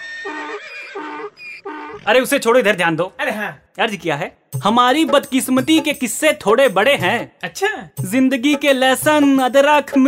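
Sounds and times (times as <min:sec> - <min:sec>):
donkey braying: 0:00.0 - 0:02.4
speech: 0:02.0 - 0:10.0.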